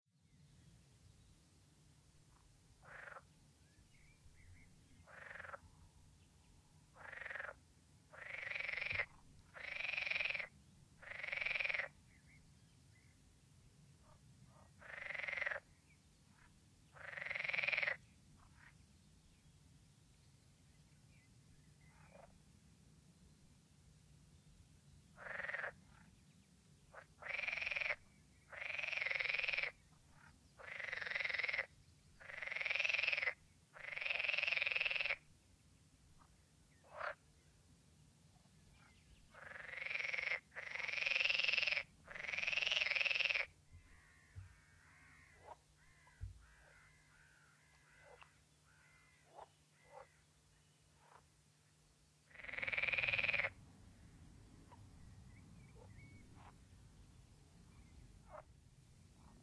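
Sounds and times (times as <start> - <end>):
green frog calling: 2.8 - 3.3, 5.0 - 5.6, 7.0 - 12.0, 14.8 - 15.6, 16.4 - 18.7, 25.2 - 25.8, 26.9 - 35.2, 39.3 - 50.2, 52.3 - 53.6.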